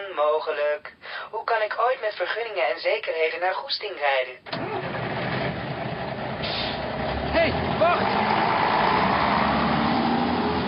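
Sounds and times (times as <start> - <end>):
speech: 0.2 - 4.8
bus engine rumbling as the bus drives off: 4.5 - 10.6.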